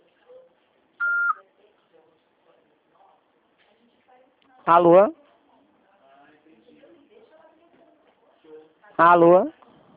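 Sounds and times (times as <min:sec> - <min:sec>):
answering machine beep: 0:01.0 - 0:01.4
speech: 0:04.7 - 0:05.2, 0:09.0 - 0:09.6.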